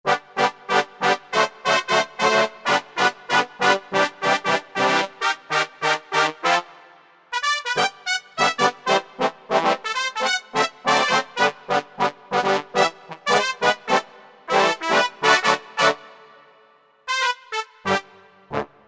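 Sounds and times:
brass sound from a synthesizer module: 0:00.1 - 0:18.8.

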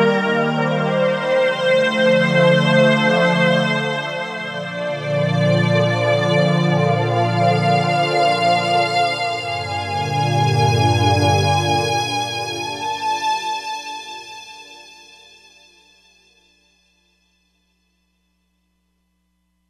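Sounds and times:
E-mu Proteus-3 synthesizer factory patches: 0:00.1 - 0:13.5.

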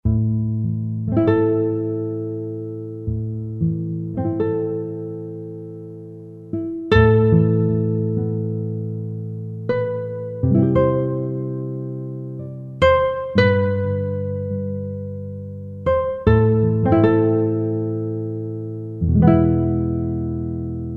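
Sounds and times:
solo nylon string guitar: 0:00.0 - 0:20.9.

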